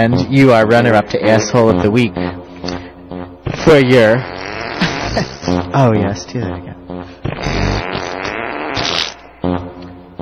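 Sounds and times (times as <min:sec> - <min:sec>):
speech: 0:00.0 - 0:02.4, 0:03.7 - 0:04.3, 0:05.2 - 0:06.8
woman imitating a long buzzing fart with the lips: 0:03.4 - 0:05.8, 0:07.0 - 0:10.2.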